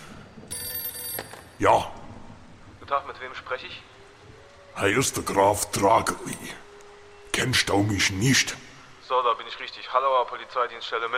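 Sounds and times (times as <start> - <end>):
telephone ringing with bright electronic tone: 0.5 - 1.6
speech: 1.2 - 2.0, 2.9 - 3.9, 4.8 - 6.7, 7.4 - 11.1.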